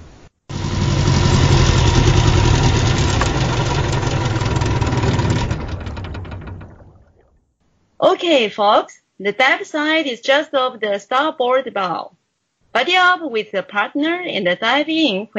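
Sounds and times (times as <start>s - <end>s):
boat engine idling: 0.5s - 7.3s
speech: 8.2s - 15.3s.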